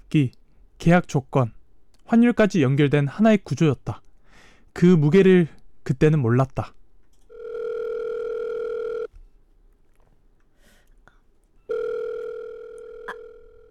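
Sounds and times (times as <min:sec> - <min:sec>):
speech: 0:00.1 - 0:04.0, 0:04.8 - 0:06.8
telephone ringing with long steady electronic tones in a company business division: 0:07.3 - 0:09.1, 0:11.7 - 0:13.6.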